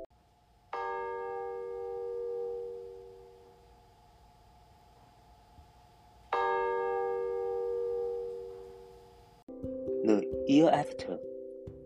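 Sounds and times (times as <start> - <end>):
church bell tolling: 0.7 - 3.5, 6.3 - 9.0
speech: 10.5 - 11.2.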